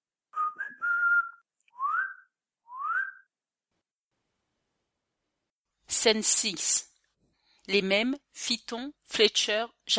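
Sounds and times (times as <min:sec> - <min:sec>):
soft human whistle as a signal: 0:00.4 - 0:03.3
speech: 0:06.0 - 0:06.9, 0:07.7 - 0:09.9.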